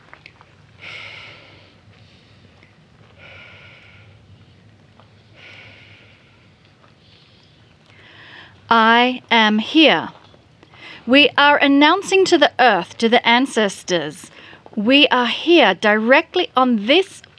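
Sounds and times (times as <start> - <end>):
slow exhalations onto a crystal held in the hand: 0.8 - 8.6, 10.6 - 11.1, 14.3 - 14.8
speech: 8.7 - 10.2, 11.1 - 17.2.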